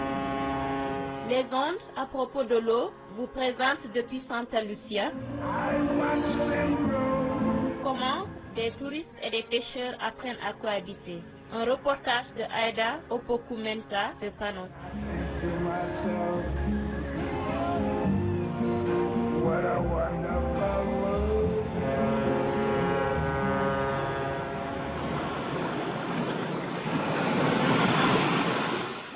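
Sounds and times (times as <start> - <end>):
steady low hum: 0.0 - 9.2, 10.7 - 29.1
speech: 1.3 - 7.0, 7.8 - 15.2
waves washing onto a beach on the Caribbean coast of Saint Lucia: 25.0 - 29.1.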